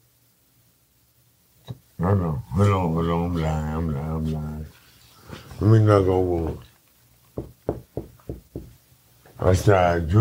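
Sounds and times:
speech: 2.0s - 4.7s, 5.6s - 6.7s, 9.4s - 10.1s
quick solid knocks on a hard surface: 7.4s - 8.8s.

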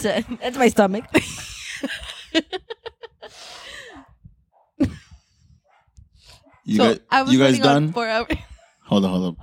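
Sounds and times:
dogs barking in the background: 0.0s - 1.4s, 3.9s - 4.8s, 5.6s - 7.1s, 8.4s - 9.4s
speech: 0.0s - 2.7s, 6.7s - 9.4s
laughter: 1.1s - 3.8s.

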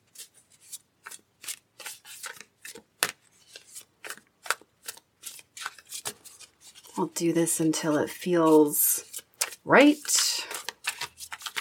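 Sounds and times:
playing cards being shuffled: 0.1s - 11.5s
speech: 7.0s - 8.8s, 9.6s - 10.2s.

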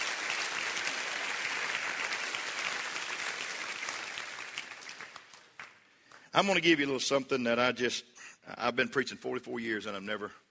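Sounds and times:
large audience clapping hands: 0.0s - 6.5s
speech: 6.4s - 10.4s.

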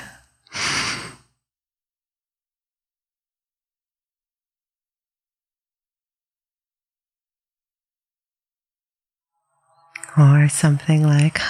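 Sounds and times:
person breathing in deeply: 0.0s - 1.3s
speech: 10.2s - 11.4s.

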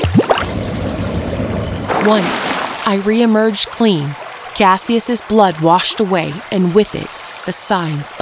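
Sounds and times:
brief gurgling splash: 0.0s - 0.5s, 1.8s - 7.5s
flowing creek water rushing: 1.9s - 8.2s
speech: 2.0s - 8.2s.

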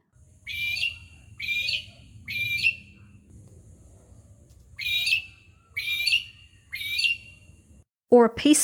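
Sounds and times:
magpie-lark loud ringing calls: 0.4s - 3.3s, 4.8s - 7.8s
speech: 8.1s - 8.6s.

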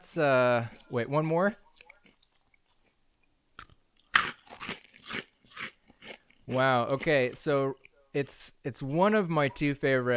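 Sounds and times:
speech: 0.2s - 1.6s, 6.5s - 10.1s
chewing a crunchy raw vegetable: 0.4s - 8.1s.

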